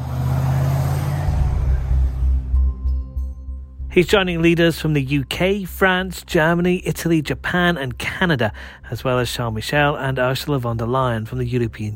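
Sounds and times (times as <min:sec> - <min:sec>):
police motorbikes speeding through the streets of Cornwall: 0:00.0 - 0:02.5
low rumbling police motorbike engines: 0:00.0 - 0:07.0
speech: 0:04.0 - 0:11.9.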